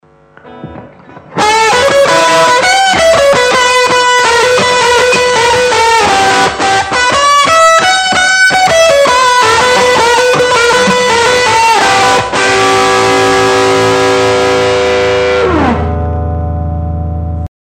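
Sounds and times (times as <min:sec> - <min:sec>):
rock and roll music: 0:00.5 - 0:17.3.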